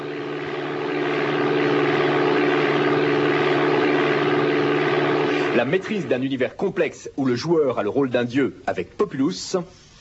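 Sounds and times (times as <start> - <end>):
propeller airplane engine droning in a flight simulator game: 0.0 - 6.4
speech: 5.6 - 9.8.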